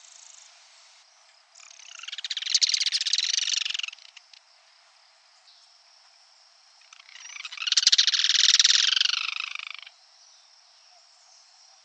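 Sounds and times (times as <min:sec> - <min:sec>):
Yellow-chinned spinetail Certhiaxis cinnamomeus churring rattles: 0:01.6 - 0:04.4, 0:06.9 - 0:09.9.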